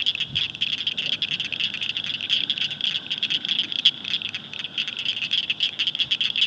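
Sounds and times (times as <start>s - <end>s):
Blanchard's cricket frog chorus clicking: 0.0s - 6.4s.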